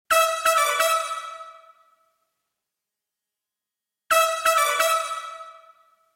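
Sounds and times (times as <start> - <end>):
brass with AMS RMX16 ambience reverb: 0.1 - 2.2, 4.1 - 6.1.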